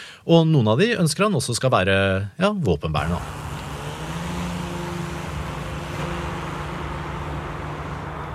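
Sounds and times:
speech: 0.2 - 3.5
small propeller-driven drone flying with buzzing motor: 3.2 - 8.3.

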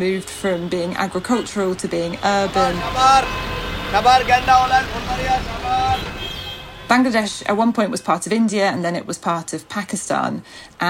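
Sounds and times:
speech: 0.0 - 6.2, 6.9 - 10.8
short high horn-like tones: 0.0 - 8.4
indistinct voices: 0.0 - 9.6
busy street traffic engines of rickshaws, cars and buses roaring: 0.0 - 10.8.

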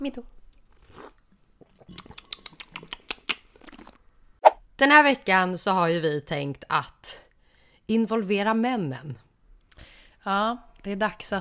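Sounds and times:
speech: 0.0 - 0.4, 4.8 - 7.2, 7.9 - 9.2, 10.2 - 11.3
wet chewing and smacking mouth sounds: 0.8 - 4.0.

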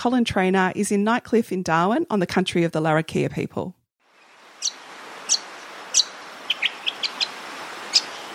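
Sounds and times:
speech: 0.0 - 3.8
brown honeyeater contact calls: 4.2 - 8.3.

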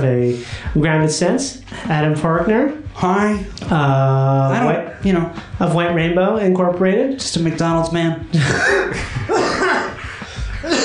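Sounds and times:
speech: 0.0 - 9.2
person coughing: 8.4 - 10.0, 10.6 - 10.8.

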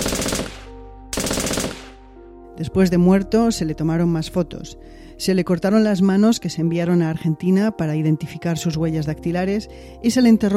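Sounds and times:
automatic gunfire from a soldier carrying out an execution: 0.0 - 2.0
speech: 2.6 - 10.5.

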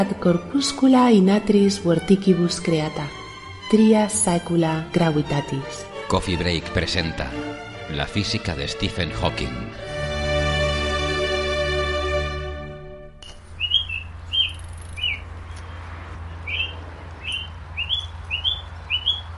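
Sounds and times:
speech: 0.0 - 9.9
sustained musical chord: 0.0 - 13.3
bird chirping on the University of Cambridge campus: 13.2 - 19.3.

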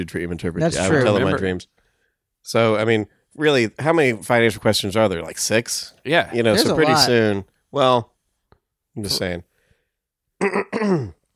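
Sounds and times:
speech: 0.0 - 1.8, 2.4 - 8.1, 9.0 - 9.5, 10.4 - 11.2
person coughing or clearing their throat: 10.4 - 11.2.

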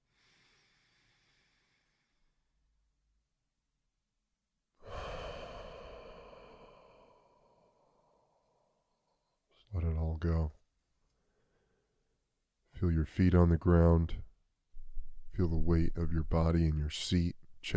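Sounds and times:
deep breath in through the nose, out through the mouth: 0.0 - 2.6, 4.8 - 9.5, 11.1 - 12.0
speech: 9.7 - 10.6, 12.8 - 14.3, 15.4 - 17.7.

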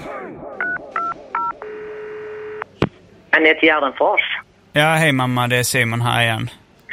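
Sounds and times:
telephone touch tones dialing a number: 0.6 - 2.7
speech: 3.4 - 6.9.

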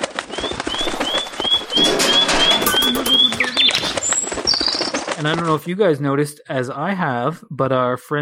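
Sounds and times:
bird sound effect chirping calls: 0.4 - 5.1
speech: 5.2 - 8.2.

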